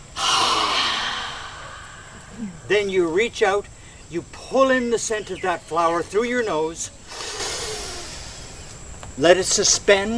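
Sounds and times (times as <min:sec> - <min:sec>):
forceful exhale through the mouth in a breathing exercise: 0:00.0 - 0:02.6, 0:07.1 - 0:08.6
speech: 0:02.7 - 0:07.0, 0:09.2 - 0:10.1.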